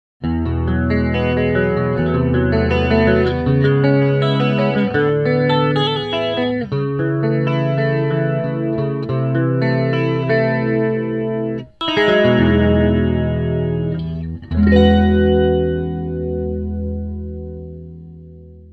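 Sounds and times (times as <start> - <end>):
guitar with chorus effect through a transistor amp: 0.2 - 18.7.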